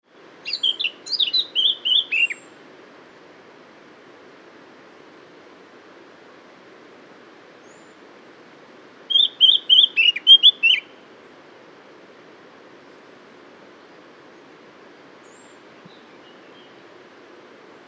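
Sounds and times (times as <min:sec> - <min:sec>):
Eurasian blackcap Sylvia atricapilla warbling song: 0:00.4 - 0:02.5, 0:09.1 - 0:10.9.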